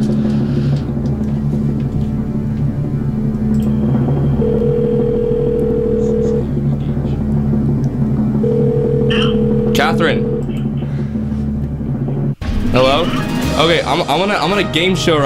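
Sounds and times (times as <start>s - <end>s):
constant low rumbling hum: 0.0s - 15.2s
phone line ringback tone on a call put on speaker: 4.4s - 6.4s, 8.4s - 10.4s
speech: 10.0s - 10.2s, 12.8s - 15.2s.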